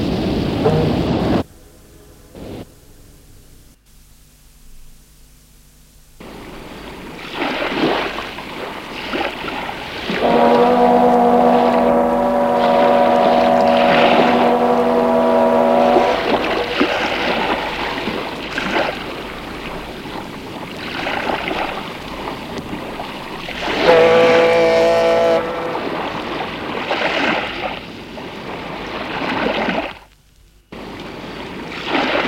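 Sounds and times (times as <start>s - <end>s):
boat engine churning as boat heads back: 0.0s - 3.8s, 6.2s - 30.0s
long steady horn blast: 0.4s - 3.2s, 9.8s - 18.4s, 23.6s - 26.7s
splashing water: 6.2s - 30.1s.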